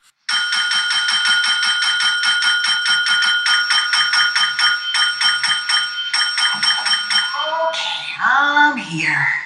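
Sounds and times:
small hand bell ringing: 0.3 - 7.7
person speaking: 6.6 - 9.4.

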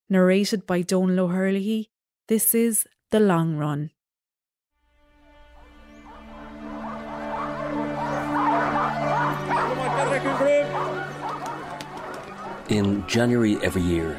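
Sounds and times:
speech: 0.1 - 4.0, 12.7 - 14.1
sled dogs barking, yipping and whining at a dog sled race in rural Norway: 5.5 - 14.1.

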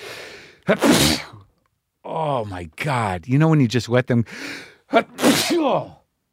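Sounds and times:
single loud sneeze: 0.7 - 1.4, 4.9 - 5.9
speech: 0.7 - 1.4, 2.2 - 6.0.

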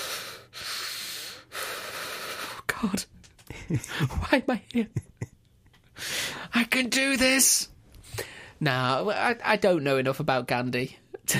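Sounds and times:
heavy breathy panting: 0.0 - 2.7, 6.0 - 6.5, 8.0 - 8.6
speech: 2.8 - 3.1, 3.7 - 5.1, 6.6 - 11.3.

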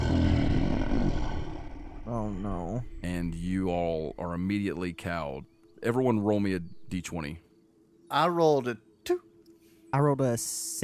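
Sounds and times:
deep bellowing creature roar: 0.0 - 4.2
speech: 2.3 - 7.5, 8.1 - 9.3, 9.9 - 10.8.

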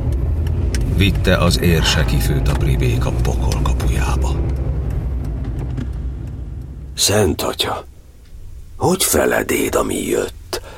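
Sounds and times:
column of cars rumbling along a road: 0.0 - 7.0
speech: 1.0 - 4.6, 7.0 - 7.9, 8.8 - 10.4.

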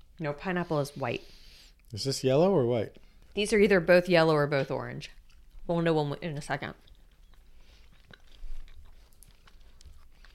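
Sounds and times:
speech: 0.2 - 6.8
chewing gummy bear candies: 4.9 - 10.3.

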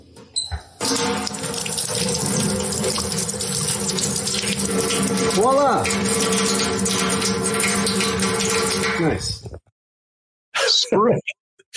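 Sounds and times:
tap water running at a sink while something is washed off: 0.5 - 9.1.

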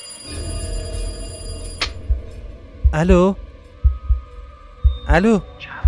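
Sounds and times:
telephone ringing with bright metallic tone: 0.0 - 2.1
speech: 2.9 - 3.4, 5.1 - 5.7.

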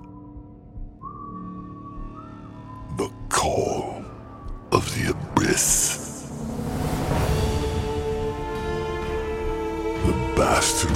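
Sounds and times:
man whistling a tune while walking into a forest: 0.9 - 4.4
speech: 3.0 - 3.6, 5.0 - 5.8
low continuous rumbling drone: 3.2 - 10.0.

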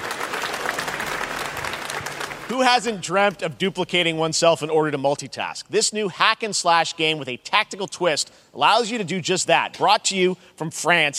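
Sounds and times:
audience clapping: 0.0 - 3.3
speech: 2.5 - 11.1.

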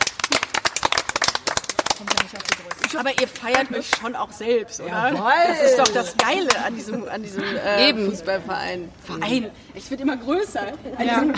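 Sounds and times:
hand clapping applause from a small group: 0.0 - 4.1
speech: 2.9 - 11.3.

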